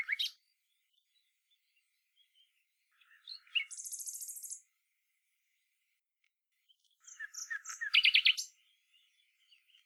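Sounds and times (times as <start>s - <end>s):
common nightingale Luscinia megarhynchos singing: 0.0s - 0.4s, 3.0s - 4.6s, 7.0s - 9.8s.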